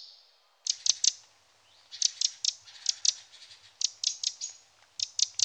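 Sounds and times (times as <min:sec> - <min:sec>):
Eurasian wren sharp clicking ticks: 0:00.7 - 0:01.3, 0:01.9 - 0:05.4.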